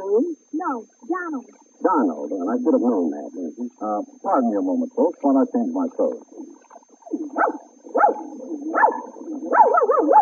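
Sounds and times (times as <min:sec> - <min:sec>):
speech: 0:00.6 - 0:06.5, 0:07.4 - 0:10.2
small dog barking: 0:07.3 - 0:10.2.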